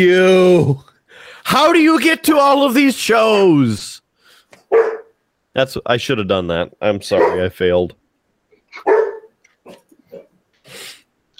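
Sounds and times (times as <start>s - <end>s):
speech: 0.0s - 0.9s, 1.5s - 4.0s, 5.6s - 8.0s
guard dog barking: 4.6s - 5.2s, 7.1s - 7.6s, 8.8s - 10.3s.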